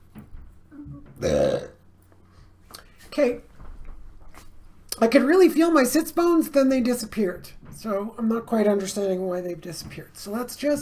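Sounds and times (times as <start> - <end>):
loud drawn-out burp: 0.7 - 1.8
speech: 3.2 - 3.5, 5.0 - 10.8.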